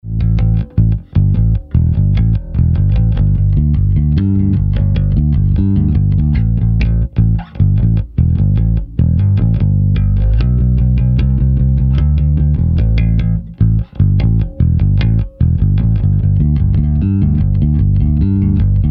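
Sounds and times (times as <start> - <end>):
bass: 0.0 - 18.8.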